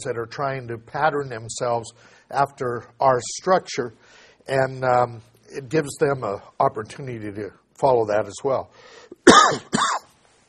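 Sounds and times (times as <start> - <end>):
speech: 0.0 - 9.8
sick man coughing with an illness in his lungs: 9.1 - 10.1.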